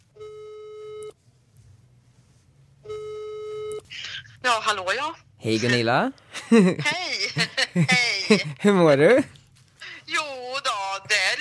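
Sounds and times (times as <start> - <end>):
telephone ringback tones over a phone line calling Dalarna Sweden: 0.2 - 1.1, 2.8 - 3.8
speech: 3.9 - 9.4
laughter: 6.4 - 8.6.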